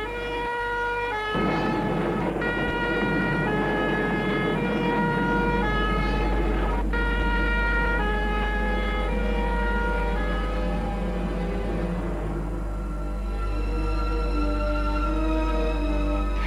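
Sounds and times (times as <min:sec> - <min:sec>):
fire engine two-tone siren arriving at a house: 0:00.0 - 0:16.4.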